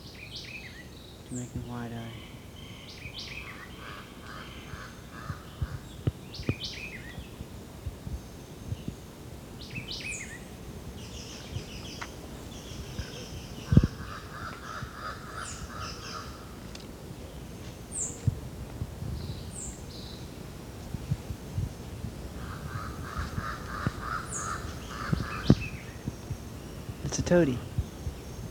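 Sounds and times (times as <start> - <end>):
thin high chirps of smaller birds: 0.0 - 28.4
speech: 1.3 - 2.4, 27.3 - 27.7
jabbering crow calls in dense vegetation along a ridgetop: 3.4 - 6.0, 13.6 - 16.7, 22.4 - 26.0.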